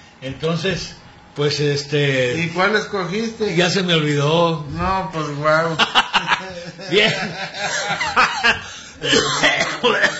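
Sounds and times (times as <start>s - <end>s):
speech: 0.2s - 10.1s
person chuckling: 5.9s - 10.1s
person coughing harshly: 9.0s - 10.1s.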